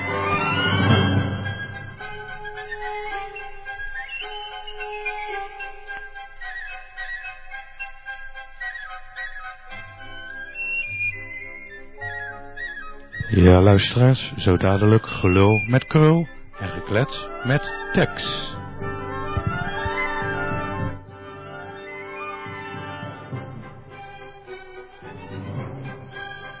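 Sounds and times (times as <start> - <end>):
piccolo-like flute playing a lively tune: 0.0 - 26.5
soft low accompanying notes: 0.0 - 26.5
speech: 13.4 - 18.6.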